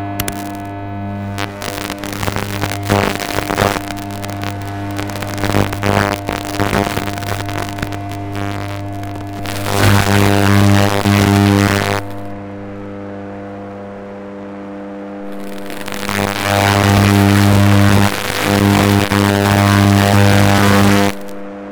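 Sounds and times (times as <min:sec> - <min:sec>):
high voltage electricity: 0:00.2 - 0:13.7, 0:15.2 - 0:21.7.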